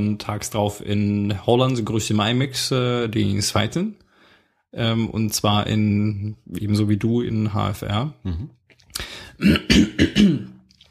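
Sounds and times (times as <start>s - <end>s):
speech: 0.0s - 4.0s, 4.7s - 8.6s, 9.4s - 10.5s
person clearing throat: 8.2s - 8.5s, 9.4s - 10.6s.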